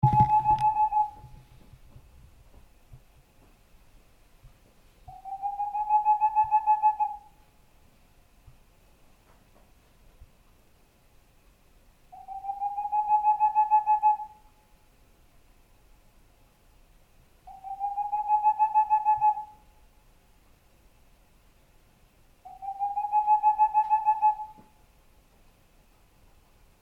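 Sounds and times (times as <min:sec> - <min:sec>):
Tengmalm's owl in northern Forez: 0:00.0 - 0:01.3, 0:05.1 - 0:07.4, 0:12.1 - 0:14.5, 0:17.5 - 0:19.6, 0:22.4 - 0:24.7.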